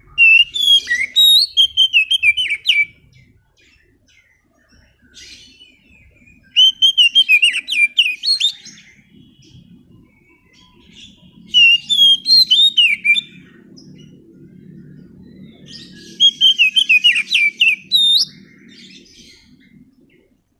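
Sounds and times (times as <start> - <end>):
Oriental magpie-robin singing lure song: 0.0 - 20.5.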